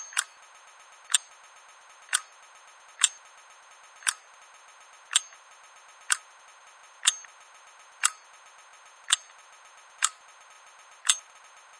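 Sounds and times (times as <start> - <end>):
ticking sound: 0.0 - 0.4, 1.1 - 1.3, 2.1 - 2.3, 3.0 - 3.2, 4.0 - 4.3, 5.1 - 5.4, 6.0 - 6.3, 7.0 - 7.4, 8.0 - 8.3, 9.0 - 9.4, 10.0 - 10.2, 11.0 - 11.3.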